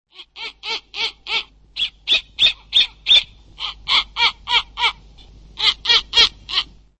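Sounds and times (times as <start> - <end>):
Bubo scandiacus: 0.1 - 6.7.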